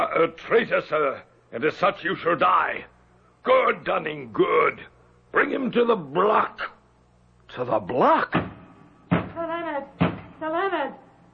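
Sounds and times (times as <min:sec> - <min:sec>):
speech: 0:00.0 - 0:06.8, 0:07.5 - 0:08.5, 0:10.4 - 0:11.0
knocking on a door: 0:08.3 - 0:09.4, 0:10.0 - 0:10.4.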